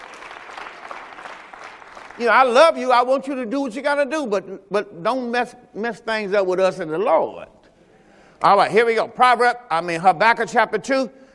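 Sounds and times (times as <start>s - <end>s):
congregation clapping hands in applause: 0.0s - 2.6s
speech: 2.2s - 7.6s, 8.4s - 11.2s.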